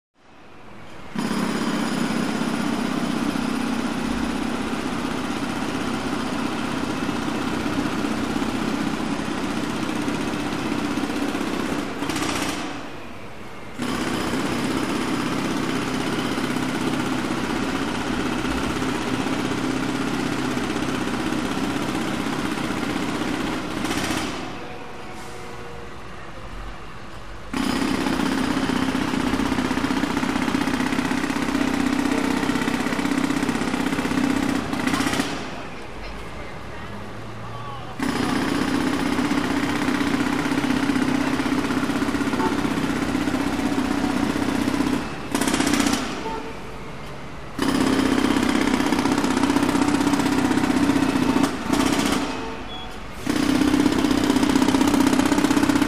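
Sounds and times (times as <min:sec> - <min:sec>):
jackhammer at a large construction site: 0:01.1 - 0:13.0, 0:13.7 - 0:24.7, 0:27.5 - 0:35.8, 0:38.0 - 0:46.5, 0:47.5 - 0:55.8.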